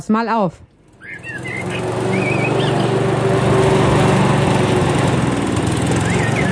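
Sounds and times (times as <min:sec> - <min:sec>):
speech: 0:00.0 - 0:00.7
lawn mower engine droning in spring: 0:00.6 - 0:06.5
faint bird chirps: 0:01.0 - 0:02.9.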